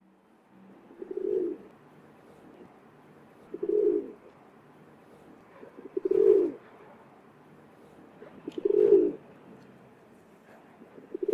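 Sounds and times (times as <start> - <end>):
rock dove calling: 0.8 - 1.7, 3.4 - 4.3, 5.2 - 6.7, 8.1 - 9.3, 10.5 - 11.3.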